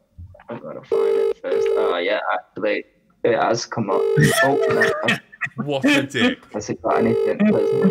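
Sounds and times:
speech: 0.5s - 7.8s
mobile phone ringing: 0.9s - 2.0s, 3.9s - 5.1s, 6.9s - 7.8s
laughter: 4.2s - 6.4s.

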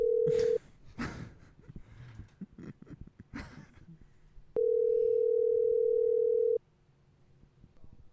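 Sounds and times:
telephone dial tone: 0.0s - 0.6s, 4.6s - 6.6s.

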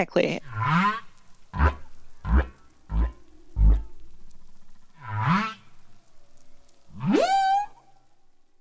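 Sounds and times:
humpback whale song: 0.4s - 8.3s.

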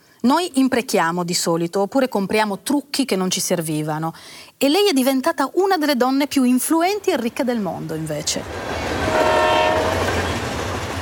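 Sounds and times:
speech: 0.2s - 8.7s
train rumbling past: 7.2s - 11.0s
train horn blast: 9.0s - 10.5s.

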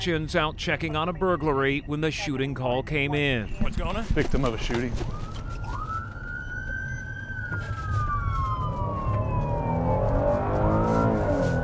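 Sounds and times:
speech: 0.0s - 5.3s
steady low rumble of engine and road noise: 0.0s - 11.6s
police car siren while racing to scene: 4.4s - 11.6s.

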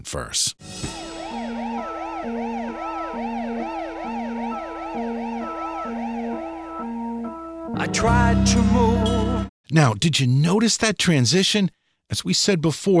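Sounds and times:
speech: 0.0s - 3.3s, 7.9s - 12.9s
low organ alternating between two notes: 0.6s - 9.5s
rapid wailing siren: 0.8s - 9.5s.

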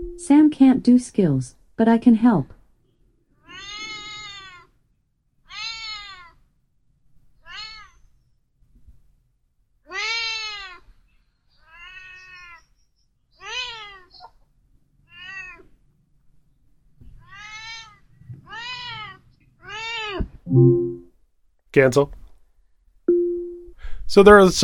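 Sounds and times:
speech: 0.2s - 2.6s, 21.8s - 22.2s, 24.1s - 24.6s
cat meowing: 3.4s - 4.8s, 5.5s - 6.4s, 7.4s - 8.1s, 9.9s - 10.9s, 11.6s - 12.7s, 13.4s - 14.3s, 15.1s - 15.7s, 17.2s - 20.4s.

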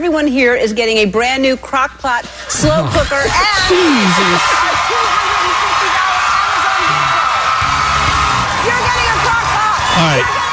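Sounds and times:
speech: 0.0s - 5.2s, 10.0s - 10.4s
studio audience cheering, whooping and screaming: 3.5s - 10.5s.

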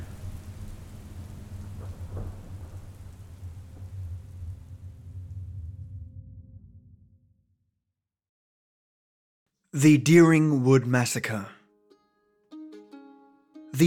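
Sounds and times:
steady rain hissing: 0.0s - 6.0s
deep low continuous thunder: 0.0s - 7.5s
speech: 9.8s - 11.6s.

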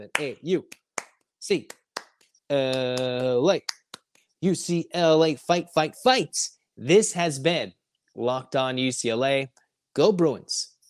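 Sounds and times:
speech: 0.0s - 0.8s, 1.4s - 1.8s, 2.5s - 3.8s, 4.4s - 10.7s
rhythmic clap cheer handclaps: 0.0s - 4.2s.

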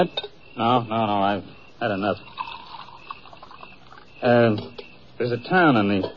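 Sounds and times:
speech: 0.0s - 2.5s, 4.2s - 6.1s
coffee pouring into a cup: 2.2s - 4.1s.

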